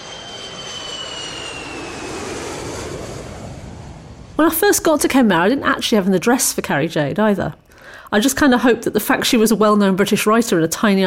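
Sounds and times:
faint high whining tones: 0.0 - 2.6
airplane engine in flight: 0.0 - 5.9
speech: 4.4 - 11.0.

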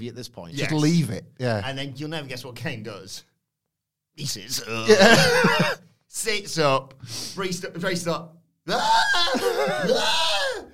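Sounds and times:
speech: 0.0 - 3.3, 4.2 - 10.7
laughter: 4.8 - 5.8, 9.1 - 10.4
person screaming in a strained high-pitched voice: 8.7 - 10.7.

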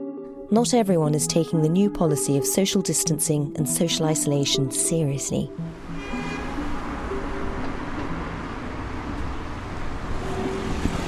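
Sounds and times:
speech: 0.5 - 6.3
street traffic passing: 3.9 - 11.0.

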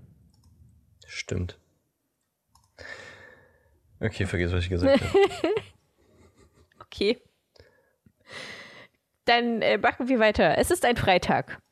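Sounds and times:
computer mouse clicks: 0.3 - 0.6, 2.5 - 2.8
speech: 1.1 - 1.6, 4.0 - 5.8, 7.0 - 7.3, 9.3 - 11.6
laughter: 4.9 - 5.7.

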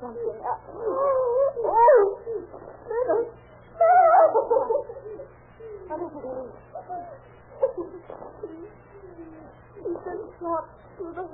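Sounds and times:
dog whimpering: 0.4 - 7.2.

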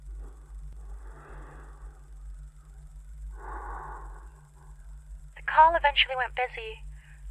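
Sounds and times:
steady low electrical hum: 0.0 - 7.2
slow heavy breaths over a muffled phone line: 0.9 - 2.0, 3.4 - 4.4
speech: 5.6 - 6.9.

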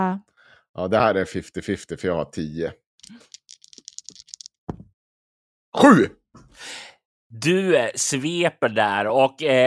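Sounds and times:
speech: 0.0 - 3.4, 5.8 - 9.6
twenty-sided die rattling across a hard surface: 3.0 - 4.8.

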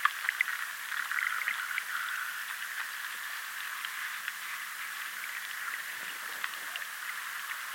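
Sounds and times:
rushing river water: 0.2 - 7.7.

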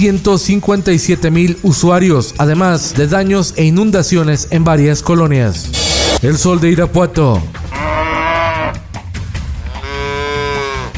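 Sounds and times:
speech: 0.0 - 7.9
cow mooing: 7.6 - 8.9, 9.6 - 10.9.

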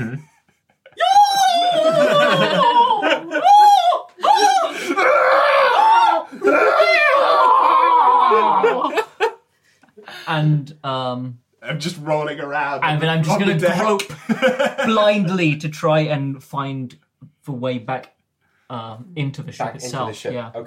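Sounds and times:
people laughing: 0.0 - 5.0, 8.2 - 9.4, 13.4 - 15.3
people screaming in mock panic: 0.9 - 9.0
speech: 10.4 - 20.6.

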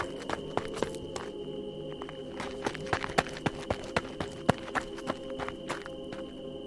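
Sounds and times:
running footsteps: 0.0 - 6.4
constant low hum: 0.0 - 6.6.

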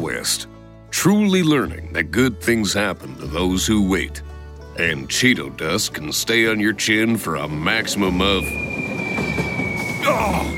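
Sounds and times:
speech: 0.2 - 9.0
train rumbling as it departs: 7.4 - 10.5
train wheels grinding and squealing on the rails: 7.6 - 10.5.

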